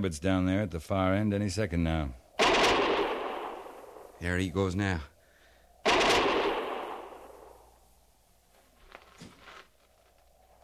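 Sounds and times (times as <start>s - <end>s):
speech: 0.0s - 2.2s, 4.2s - 5.1s
gunfire from men up on a rim: 2.4s - 4.2s, 5.8s - 7.8s.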